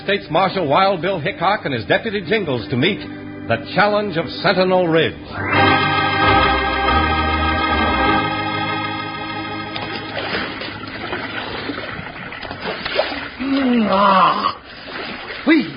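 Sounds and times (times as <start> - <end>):
speech: 0.0 - 5.9, 13.8 - 14.6, 15.4 - 15.7
sustained musical chord: 5.0 - 11.7
mountain stream splashing and burbling: 10.2 - 14.0, 14.6 - 15.7.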